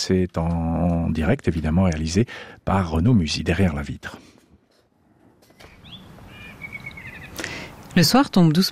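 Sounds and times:
speech: 0.0s - 4.4s, 8.0s - 8.7s
blackbird singing fluty whistled phrases: 5.6s - 7.6s.

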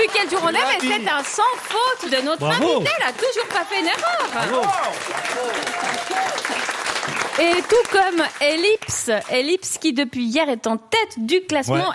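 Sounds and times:
audience applause at a quiz game: 0.0s - 9.3s
speech: 0.0s - 11.9s.

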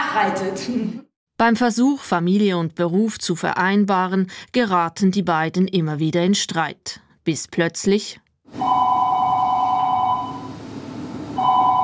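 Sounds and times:
speech: 0.2s - 8.8s
telephone ringing with a trilling electronic tone: 8.6s - 10.6s, 11.4s - 11.8s.

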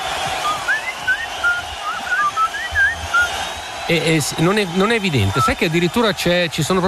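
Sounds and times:
person whistling a short wandering melody: 0.4s - 3.3s
speech: 3.9s - 6.8s.

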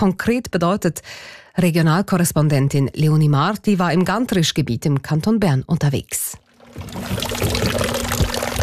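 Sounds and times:
speech: 0.0s - 8.0s
fountain water splashing in front of a house in Riedern bei Riggisberg, Switzerland: 6.7s - 8.6s.

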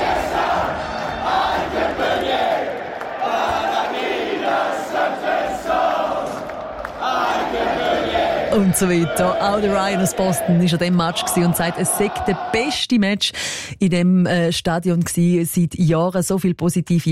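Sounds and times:
large crowd singing along at a Boston Red Sox baseball game in the stadium: 0.0s - 12.8s
speech: 8.6s - 17.0s.

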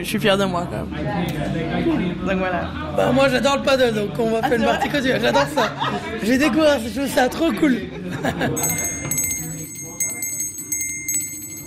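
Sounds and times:
speech: 0.0s - 8.9s
laughter: 4.2s - 6.6s, 7.6s - 9.2s
small hand bell ringing to announce the next round at a paddle game: 8.6s - 11.6s.

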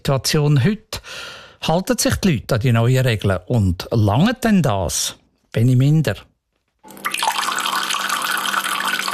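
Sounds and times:
speech: 0.1s - 6.3s
spring water gushing from a source: 6.9s - 9.1s.

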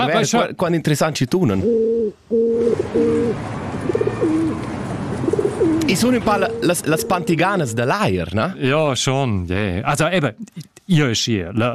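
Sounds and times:
speech: 0.0s - 4.1s, 5.9s - 11.7s
pigeons cooing: 1.6s - 7.4s.

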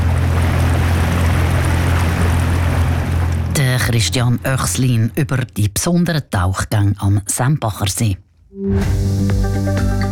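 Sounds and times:
motorboat engine droning on a lake: 0.0s - 5.5s
churning water rushing: 0.0s - 6.4s
speech: 3.8s - 10.0s.

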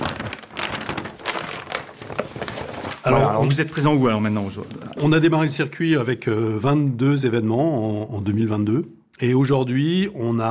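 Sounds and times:
paper world map being handled, crinkling and rustling: 0.0s - 5.2s
speech: 3.0s - 10.4s.

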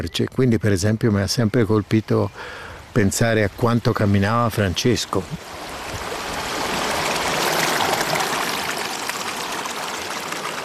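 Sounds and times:
speech: 0.0s - 6.1s
small young river flowing over stones: 3.3s - 10.6s.

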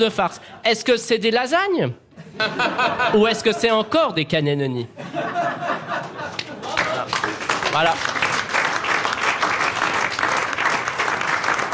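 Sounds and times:
speech: 0.0s - 5.9s, 7.7s - 8.3s
laughter: 2.1s - 3.8s, 4.9s - 7.4s
theater audience applause in a standing ovation: 6.6s - 11.7s.

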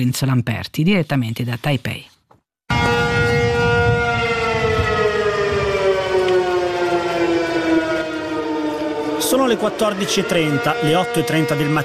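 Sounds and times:
speech: 0.0s - 2.1s, 9.3s - 11.8s
air-raid siren wailing: 2.7s - 11.8s.

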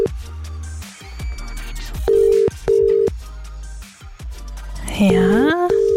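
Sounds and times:
music: 0.0s - 5.9s
telephone ringback tone on an outgoing call: 2.1s - 3.1s, 5.1s - 5.9s
speech: 5.0s - 5.4s.

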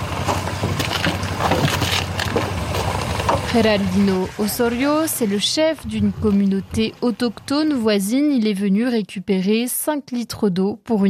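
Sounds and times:
small motorcycle engine droning: 0.0s - 6.2s
wind noise: 0.0s - 7.5s
speech: 3.6s - 11.0s.

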